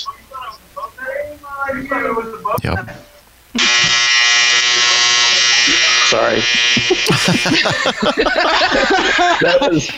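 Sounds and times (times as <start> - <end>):
speech: 1.7 - 4.0, 6.2 - 9.9
clothes dryer electronic buzzer going off: 3.6 - 9.0
laughter: 6.6 - 9.9.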